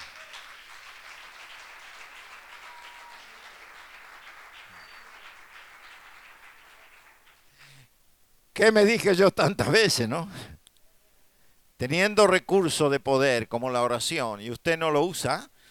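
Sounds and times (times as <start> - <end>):
audience applause: 0.0 - 7.8
speech: 8.6 - 10.5, 11.8 - 15.5.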